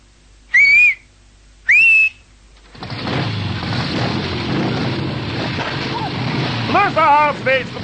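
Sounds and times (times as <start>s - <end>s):
loud clear shrill whistle blasts: 0.5s - 2.3s
rushing rumbling wash of broadband noise: 2.7s - 7.8s
speech: 7.0s - 7.8s.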